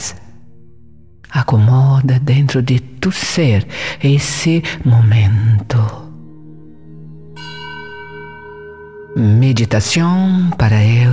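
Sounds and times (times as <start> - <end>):
speech: 1.3 - 6.0, 9.2 - 11.1
bells ringing with sustained resonant tones: 6.2 - 11.1
bright bell strike with shimmering overtones: 7.4 - 9.4.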